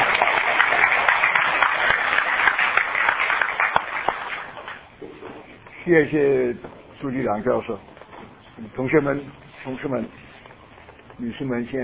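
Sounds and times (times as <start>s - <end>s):
audience applause welcoming a speaker: 0.0s - 4.9s
speech: 5.9s - 7.9s, 8.6s - 10.2s, 11.2s - 11.8s.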